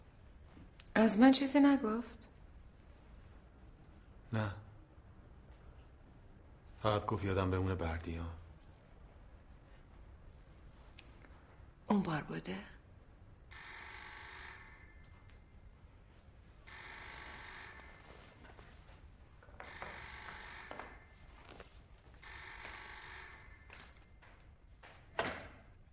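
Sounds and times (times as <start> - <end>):
speech: 1.0 - 2.3, 4.3 - 4.6, 6.8 - 8.4, 11.9 - 12.8
telephone ringing with trilling bell tones: 13.5 - 15.5, 16.6 - 18.6, 19.5 - 24.3.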